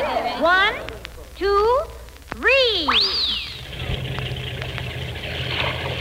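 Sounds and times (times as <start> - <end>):
speech: 0.4 - 3.2
speedboat engine running across a lake: 3.6 - 5.9.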